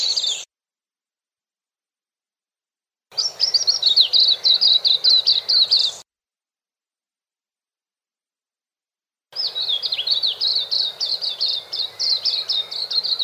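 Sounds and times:
white-eye singing a quick high-pitched warble: 0:00.0 - 0:00.5, 0:03.2 - 0:06.0, 0:09.4 - 0:13.2.

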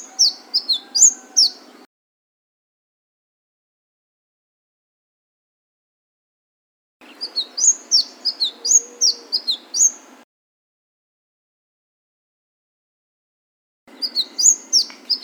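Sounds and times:
flame-breasted sunbird singing thin piercing notes: 0:00.0 - 0:01.9, 0:07.0 - 0:10.2, 0:13.9 - 0:15.2.

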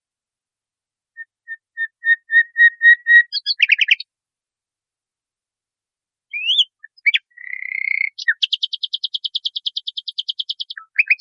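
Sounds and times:
nightingale singing on a training recording for cage birds: 0:01.2 - 0:04.1, 0:06.3 - 0:11.1.

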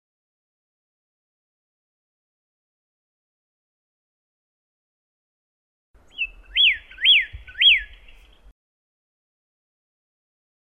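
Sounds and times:
Pyrrhuloxia song: 0:06.1 - 0:08.3.

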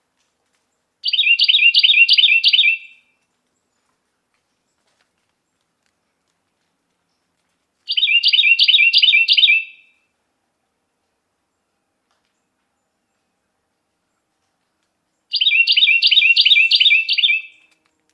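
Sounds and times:
Carolina wren song: 0:01.0 - 0:03.1, 0:07.9 - 0:10.0, 0:15.1 - 0:18.1.

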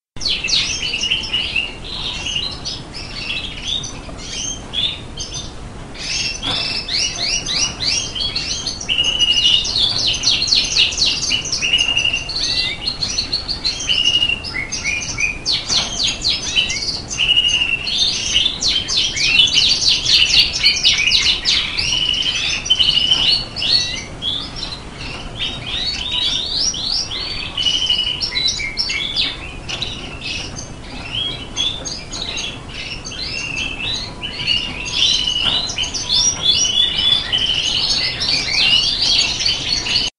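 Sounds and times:
border canary singing: 0:00.2 - 0:40.1.

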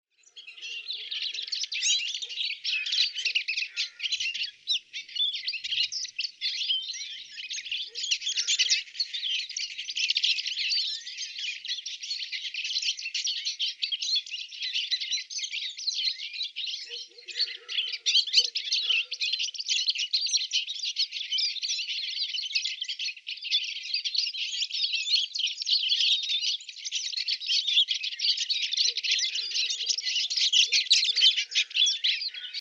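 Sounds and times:
black siskin calling: 0:00.2 - 0:32.5.

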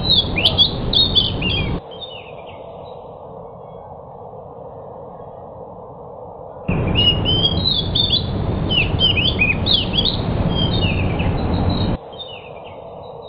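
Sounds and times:
pied bush chat song, twittering and chattering warbled phrases: 0:00.0 - 0:01.8, 0:06.7 - 0:12.0.

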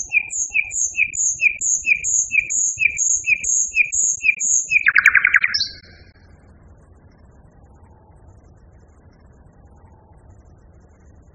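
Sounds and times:
common nightingale song phrase: 0:00.0 - 0:06.2.

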